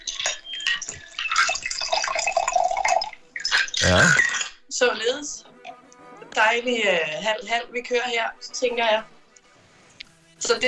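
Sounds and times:
drink pouring into a chilled wine glass: 0:00.2 - 0:04.1
speech: 0:03.9 - 0:05.5, 0:06.4 - 0:09.1, 0:10.4 - 0:10.6.

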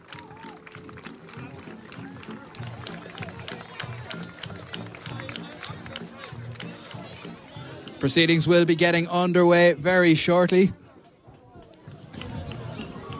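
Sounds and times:
scattered clapping: 0:00.0 - 0:09.0, 0:11.6 - 0:13.1
large outdoor crowd cheering and roaring in welcome: 0:00.0 - 0:09.5, 0:12.0 - 0:13.1
speech: 0:08.0 - 0:10.8.

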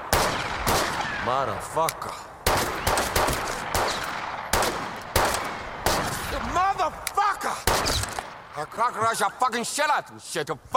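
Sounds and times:
gunshots in a film scene: 0:00.0 - 0:01.8, 0:02.4 - 0:06.9, 0:07.5 - 0:08.8
speech: 0:01.3 - 0:02.3, 0:08.6 - 0:10.7.

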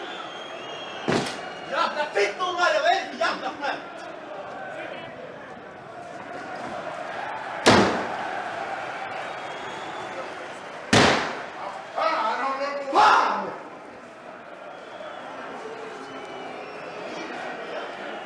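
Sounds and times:
door slamming: 0:01.1 - 0:01.4, 0:07.6 - 0:08.1
murmur of indistinct voices: 0:01.3 - 0:18.2.

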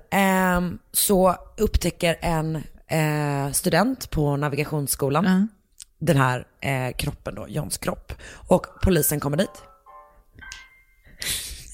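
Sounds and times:
speech: 0:00.6 - 0:09.7, 0:11.2 - 0:11.5
funky mobile phone ringtone: 0:08.6 - 0:11.2.

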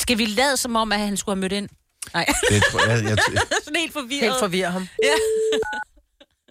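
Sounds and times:
speech: 0:00.1 - 0:05.9
laughter: 0:02.3 - 0:03.8
touch-tone phone number being dialed: 0:05.0 - 0:05.8.

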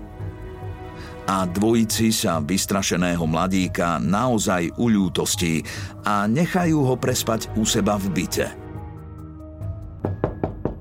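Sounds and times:
speech: 0:01.3 - 0:08.6
knocking on a wooden front door: 0:10.0 - 0:10.7.

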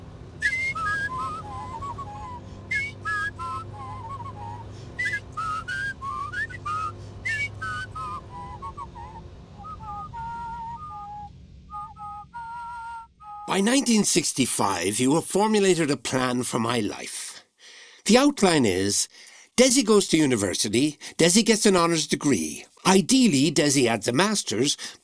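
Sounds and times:
low engine-like rumble of a car on back roads in East Cork: 0:00.0 - 0:25.0
two people whistling a lively tune while driving: 0:00.4 - 0:13.5
speech: 0:13.5 - 0:17.2, 0:18.1 - 0:25.0.

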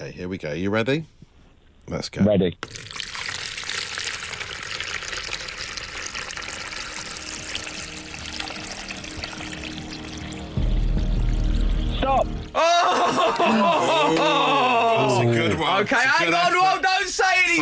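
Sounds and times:
speech: 0:00.1 - 0:01.2, 0:01.9 - 0:03.0, 0:15.8 - 0:17.6
liquid pouring into a container in a pouring challenge: 0:02.6 - 0:12.4
laughter: 0:12.6 - 0:16.5.

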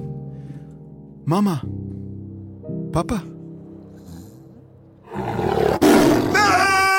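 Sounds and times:
speech: 0:01.3 - 0:01.8, 0:03.0 - 0:03.3
tiger roaring: 0:03.8 - 0:06.9.

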